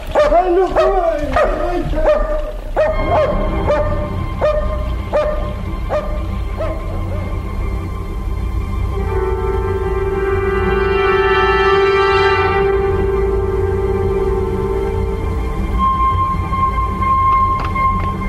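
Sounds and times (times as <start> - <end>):
low rumbling background: 0.0 - 18.2
dog barking: 0.1 - 7.4
speech: 0.3 - 3.7.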